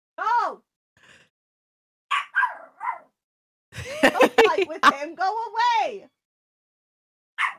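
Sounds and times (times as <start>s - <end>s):
female guard dog barking roughly: 2.1s - 3.2s, 7.4s - 7.5s
laughter: 3.8s - 5.0s
speech: 4.3s - 6.2s.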